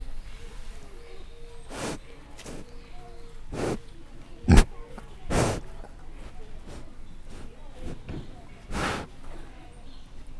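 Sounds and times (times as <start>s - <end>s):
Vietnamese pot-bellied pig at a zoo: 1.7s - 9.5s.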